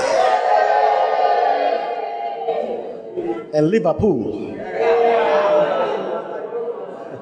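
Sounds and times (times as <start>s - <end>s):
large crowd roaring and cheering for a football team: 0.0s - 3.4s, 4.6s - 7.1s
speech: 3.5s - 4.5s
laughter: 4.8s - 7.1s.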